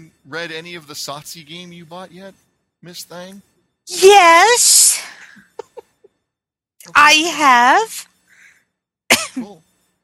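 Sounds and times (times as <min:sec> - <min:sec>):
speech: 0:00.3 - 0:05.5, 0:06.8 - 0:08.1, 0:09.4 - 0:09.7
cough: 0:09.1 - 0:09.6.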